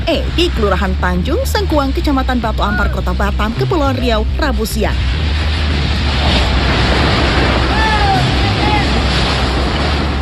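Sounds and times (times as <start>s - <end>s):
strong gusting wind blasting the microphone: 0.0s - 10.2s
speech: 0.1s - 5.5s.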